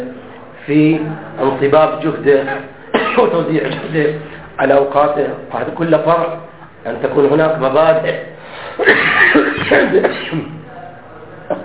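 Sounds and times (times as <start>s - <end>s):
speech: 0.7s - 10.5s
person coughing: 2.9s - 3.9s, 8.1s - 10.5s
throat clearing: 8.1s - 10.5s.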